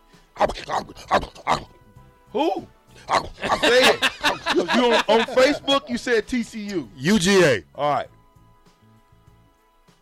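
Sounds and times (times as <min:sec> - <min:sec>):
speech: 0:00.4 - 0:01.7, 0:02.3 - 0:08.2
person imitating a dog barking: 0:00.4 - 0:01.8, 0:03.0 - 0:03.8
laughter: 0:03.1 - 0:06.1.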